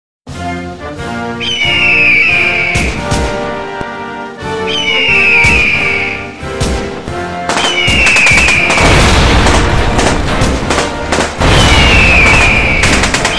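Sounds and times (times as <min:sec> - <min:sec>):
national anthem music: 0:00.3 - 0:13.3
explosions: 0:02.6 - 0:03.6, 0:05.3 - 0:05.9, 0:06.6 - 0:13.3
gunshots: 0:02.6 - 0:03.6, 0:06.6 - 0:13.3.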